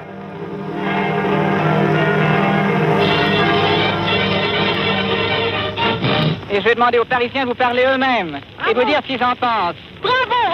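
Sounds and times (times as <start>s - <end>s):
several church bells of a Paris neighbourhood pealing: 0.0s - 6.1s
speech: 6.6s - 10.2s.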